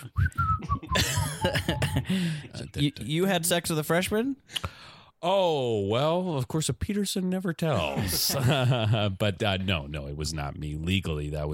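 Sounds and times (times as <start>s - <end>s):
person whistling a brief wavering tune: 0.0s - 2.3s
laughter: 0.6s - 2.6s, 7.8s - 9.1s
speech: 1.4s - 11.5s.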